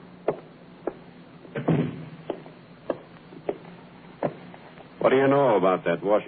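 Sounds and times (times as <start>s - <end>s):
sharp knocks and clatters: 0.2s - 4.5s
door swinging and banging shut: 1.6s - 2.3s
speech: 5.0s - 6.2s.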